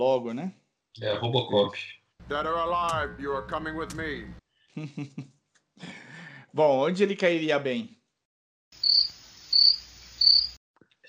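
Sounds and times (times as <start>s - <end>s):
speech: 0.0s - 5.9s, 6.5s - 8.0s
laughter: 4.8s - 6.1s
crickets chirping: 8.8s - 10.6s.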